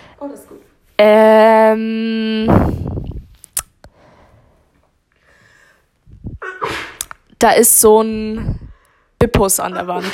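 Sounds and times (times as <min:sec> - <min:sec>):
speech: 0:00.2 - 0:02.9, 0:07.4 - 0:10.1
person sneezing: 0:06.3 - 0:07.0.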